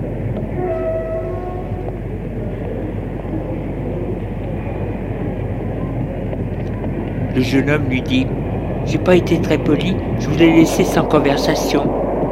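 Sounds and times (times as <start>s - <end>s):
train arriving at a station: 0.0s - 12.3s
train horn or whistle: 0.5s - 2.2s
speech: 7.4s - 12.0s.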